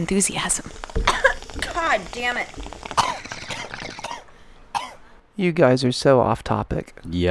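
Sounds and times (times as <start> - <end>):
speech: 0.0 - 1.1, 1.8 - 2.7, 5.4 - 7.2
person coughing in short harsh bursts: 3.0 - 5.0.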